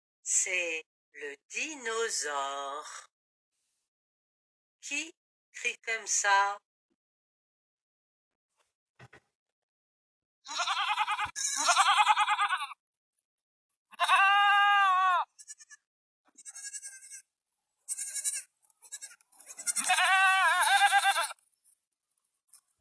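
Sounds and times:
speech: 0.4 - 3.1, 4.9 - 6.7, 10.5 - 12.8, 14.0 - 15.3
goat bleating loudly: 10.5 - 12.8, 13.9 - 17.2, 17.9 - 21.4.

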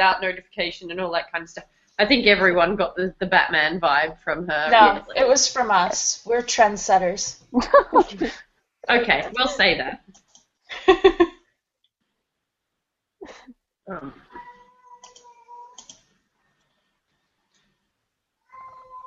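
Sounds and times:
speech: 0.0 - 10.2, 10.8 - 11.4, 13.2 - 14.2
upset cat meowing: 18.5 - 19.0.

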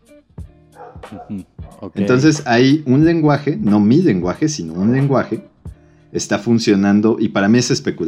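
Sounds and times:
speech: 0.2 - 5.5, 6.1 - 8.0
person imitating dog barking: 0.8 - 2.2.

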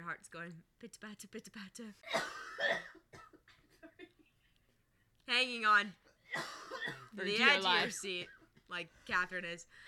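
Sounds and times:
speech: 0.1 - 3.3, 5.3 - 9.8
person coughing fit: 2.0 - 3.6, 6.3 - 7.1.

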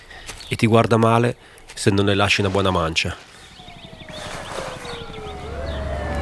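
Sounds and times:
speech: 0.5 - 3.3
distant emergency sirens wailing: 3.2 - 6.2
helicopter circling overhead: 3.3 - 6.2.

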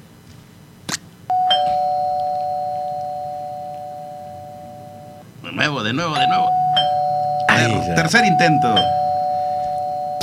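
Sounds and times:
doorbell chime: 1.3 - 5.2, 6.2 - 10.2
speech: 5.5 - 6.6, 7.6 - 9.0.

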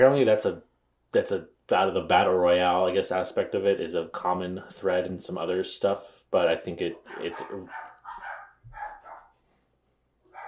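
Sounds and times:
speech: 0.0 - 7.9
dogs barking: 6.9 - 9.4, 10.3 - 10.4.

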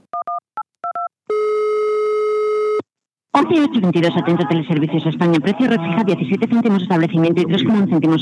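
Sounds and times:
steady loud telephone line tone: 0.2 - 2.8
speech: 3.4 - 8.1.

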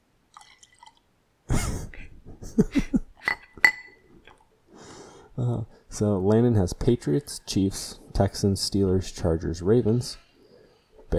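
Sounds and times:
beer poured into a glass: 0.3 - 1.1
light glass clinks: 3.2 - 4.1
sharp glassy tap: 3.3 - 4.0
speech: 5.4 - 10.2.

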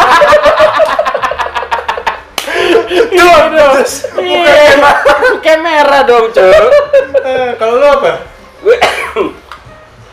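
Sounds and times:
laughter: 0.0 - 5.6, 6.4 - 7.6
speech: 6.1 - 8.3
harsh coughs: 8.7 - 9.4.

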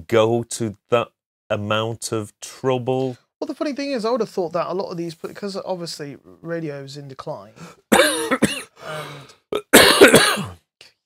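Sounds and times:
speech: 0.1 - 9.4
person clearing throat: 7.9 - 8.7, 9.5 - 10.6
person coughing and hacking: 7.9 - 10.6.

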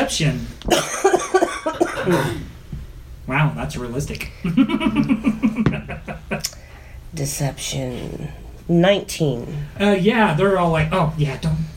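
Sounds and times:
speech: 0.1 - 2.5, 3.3 - 6.4, 7.1 - 11.7
person coughing in a fit of uncontrollable coughing: 0.7 - 2.5
laughter: 4.4 - 6.5.

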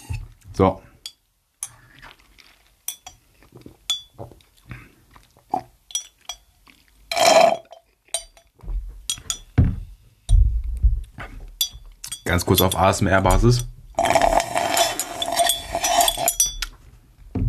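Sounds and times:
speech: 0.6 - 0.8, 12.4 - 13.7
glass clinking: 2.9 - 3.2, 3.9 - 4.2, 5.9 - 6.5, 7.1 - 10.4, 11.6 - 16.8
person gulping and swallowing a drink from a glass: 14.0 - 15.4
sipping from a glass: 14.0 - 16.4.

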